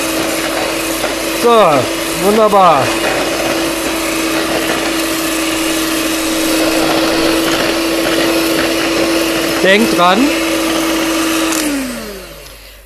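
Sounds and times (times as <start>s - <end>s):
electric mixer whipping cream on a higher speed setting: 0.0s - 12.8s
speech: 1.4s - 3.2s, 9.6s - 10.4s.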